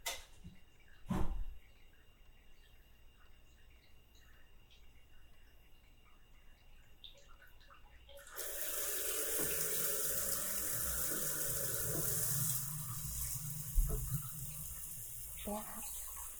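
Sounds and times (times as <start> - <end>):
water pouring from a tap to rinse a body: 8.2 - 16.3.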